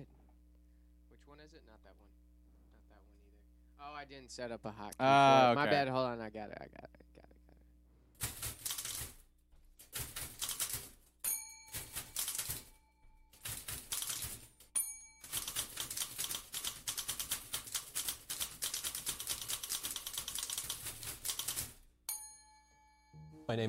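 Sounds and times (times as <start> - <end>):
speech: 1.4 - 2.3, 3.8 - 7.0, 23.5 - 23.6
typewriter ensemble including a tenor typewriter playing a percussive piece: 8.2 - 9.2, 9.8 - 11.0, 11.7 - 12.7, 13.4 - 14.5, 15.2 - 21.8
typewriter carriage-return bell dings: 11.2 - 13.2, 14.8 - 15.5, 22.1 - 23.2.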